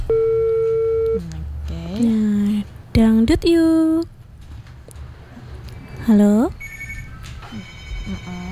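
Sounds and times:
telephone busy tone after a call disconnects: 0.0 - 1.3
speech: 2.0 - 2.3, 3.0 - 4.1, 6.1 - 6.6.

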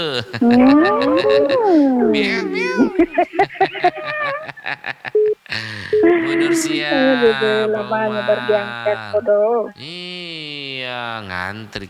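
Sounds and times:
speech: 0.0 - 4.0, 4.8 - 11.8
laughter: 0.0 - 10.0
cat meowing: 0.4 - 4.5, 6.0 - 9.8.

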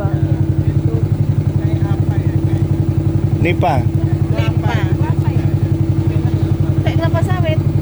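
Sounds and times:
faint voices murmuring: 0.0 - 7.8
laughter: 0.0 - 7.8
motorboat engine chugging on river: 0.0 - 7.8
speech: 3.4 - 4.1.

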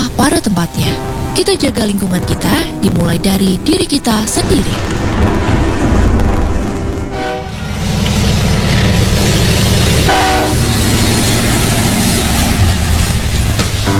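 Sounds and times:
train rumbling past with rattle of rail cars: 0.0 - 13.9
speech: 0.2 - 5.9
train horn blasts: 7.1 - 7.8, 10.0 - 10.8.

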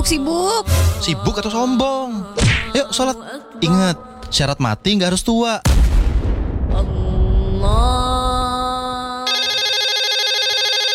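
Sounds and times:
speech: 0.1 - 5.9, 7.6 - 8.1
low rumbling noise: 5.7 - 9.2
rapidly warbling telephone ring: 9.3 - 10.9.

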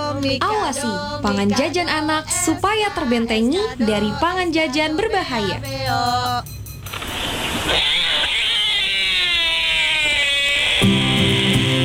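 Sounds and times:
speech: 0.2 - 7.0, 7.7 - 7.9
binturong giving cat-like wailing calls: 6.9 - 11.8.

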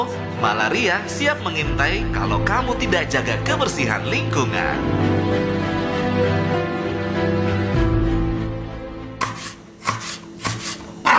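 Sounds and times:
speech: 0.0 - 5.5, 6.2 - 6.6
sustained tonal music: 0.0 - 11.1
knife chopping on a plastic cutting board: 9.2 - 11.1.

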